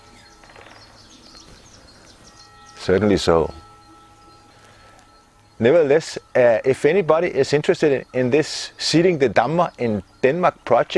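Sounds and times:
high chirps: 0.0s - 10.9s
soft outdoor hum: 0.0s - 10.9s
woodpecker calling: 0.0s - 10.9s
speech: 2.8s - 3.6s, 5.6s - 10.9s.

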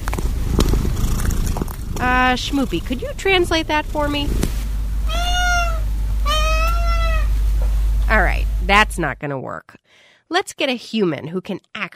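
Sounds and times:
low steady hum: 0.0s - 9.6s
speech: 2.1s - 4.5s, 8.1s - 11.9s
cat meowing: 5.1s - 7.4s.

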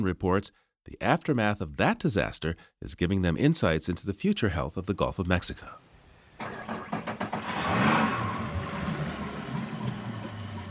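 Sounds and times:
speech: 0.0s - 5.8s
outboard motor of a tiny fishing boat starting and droning: 6.4s - 10.6s.

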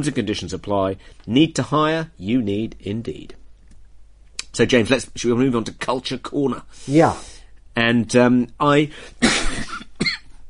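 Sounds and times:
speech: 0.0s - 3.4s, 4.5s - 9.3s
person coughing roughly: 9.2s - 10.3s.

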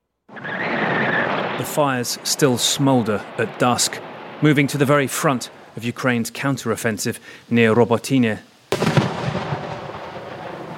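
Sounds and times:
artillery round firing near the front line close to Robotyne, Ukraine: 0.3s - 4.7s, 8.7s - 10.7s
speech: 1.6s - 8.5s.

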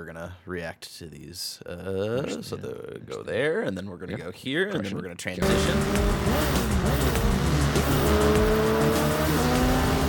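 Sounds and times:
speech: 0.0s - 9.5s
race car engines roaring and revving in a video game racing trailer: 5.4s - 10.0s.

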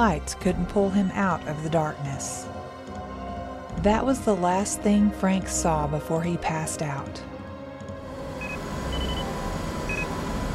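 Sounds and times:
speech: 0.0s - 2.6s, 3.8s - 7.3s
steady low mechanical hum: 8.0s - 10.5s
short thin electronic beeps: 8.4s - 9.3s, 9.9s - 10.1s.

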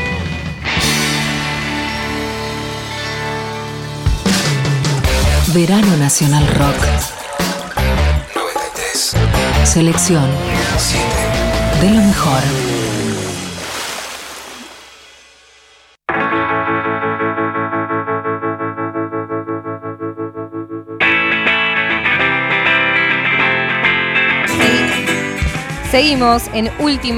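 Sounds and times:
radio show instrumental theme music with heavily processed chorus-drenched guitar: 0.0s - 13.6s, 16.1s - 27.1s
speech: 5.5s - 7.5s, 9.7s - 13.0s, 26.0s - 27.1s.

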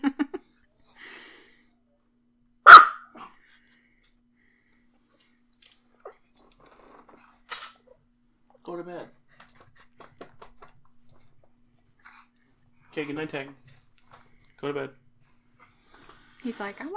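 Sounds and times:
Pomeranian barking: 2.7s - 3.2s
speech: 8.7s - 9.2s, 13.0s - 13.7s, 14.6s - 15.0s, 16.4s - 16.9s.

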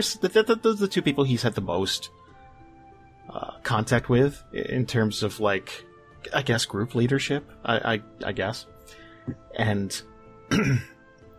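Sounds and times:
speech: 0.0s - 2.3s, 3.3s - 11.0s
throat clearing: 10.5s - 11.0s.

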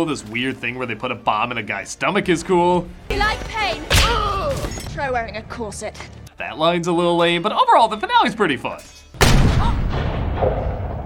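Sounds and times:
speech: 0.0s - 9.0s
pistol gunshot in a film scene: 9.2s - 11.0s.

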